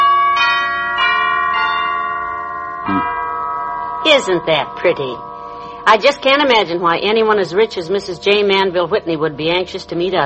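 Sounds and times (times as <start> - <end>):
doorbell chime ringing a short melody of bright bell tones: 0.0 - 6.3
speech: 4.1 - 10.2.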